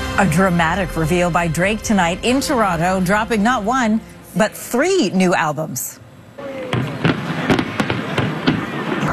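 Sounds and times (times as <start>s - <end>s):
speech: 0.1s - 6.0s
crowd noise: 4.4s - 9.1s
fireworks bursting over the water: 6.7s - 9.1s.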